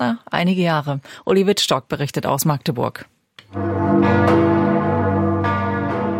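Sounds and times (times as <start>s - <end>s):
speech: 0.0s - 3.2s
large church bells of a cathedral in Germany ringing: 3.5s - 6.1s.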